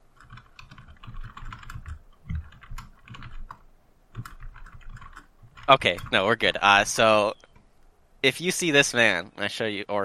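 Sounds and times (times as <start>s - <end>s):
typing on a computer keyboard: 0.1s - 7.6s
speech: 5.7s - 7.4s, 8.2s - 10.0s.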